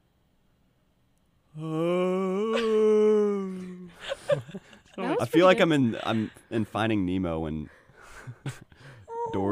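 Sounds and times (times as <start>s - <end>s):
person's voice imitating a beached whale call: 1.5s - 3.9s
speech: 1.6s - 1.9s, 5.2s - 8.6s.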